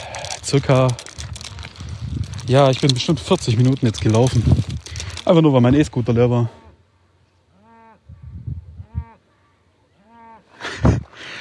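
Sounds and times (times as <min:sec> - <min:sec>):
speech: 0:00.5 - 0:01.0, 0:02.5 - 0:06.6
cow mooing loudly: 0:07.6 - 0:08.0, 0:10.0 - 0:10.4.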